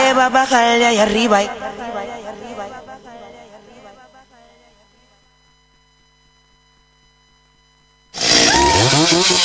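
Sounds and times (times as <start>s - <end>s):
speech: 0.2s - 2.9s, 8.8s - 9.4s
chainsaw roaring and revving: 8.2s - 9.4s.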